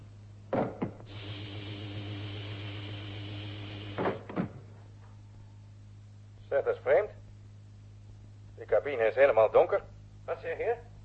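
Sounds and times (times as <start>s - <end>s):
low constant hum: 0.0s - 11.0s
cabin door whirring slide: 1.1s - 4.6s
airlock cabin door clunks: 4.0s - 4.6s
speech: 6.6s - 7.2s, 8.8s - 10.9s.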